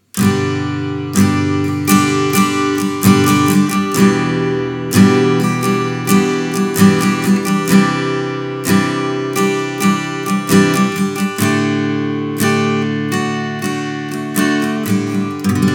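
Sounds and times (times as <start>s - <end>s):
strumming: 0.0s - 15.7s.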